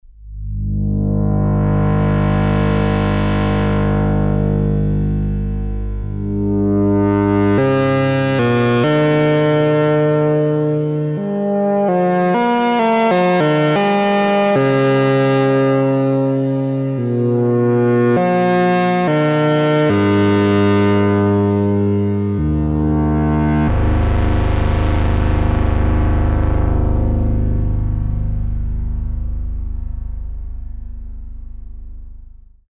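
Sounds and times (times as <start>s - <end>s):
quad LFO modulated synthesizer tone: 0.0s - 32.6s.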